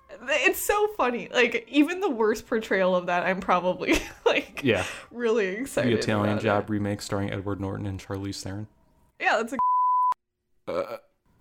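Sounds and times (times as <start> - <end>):
speech: 0.2 - 9.6, 10.7 - 11.0
short guttural burp: 10.6 - 11.2.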